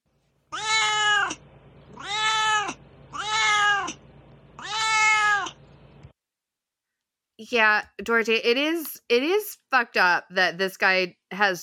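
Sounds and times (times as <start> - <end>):
cat meowing: 0.5 - 1.4, 2.0 - 4.0, 4.6 - 5.6
speech: 7.5 - 11.6.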